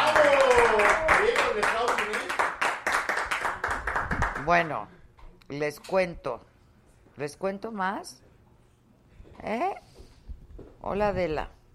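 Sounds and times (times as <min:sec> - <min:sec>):
crowd clapping and applauding in a rhythmic beat: 0:00.0 - 0:04.7
speech: 0:04.5 - 0:06.5, 0:07.2 - 0:08.2, 0:09.4 - 0:09.9, 0:10.8 - 0:11.6.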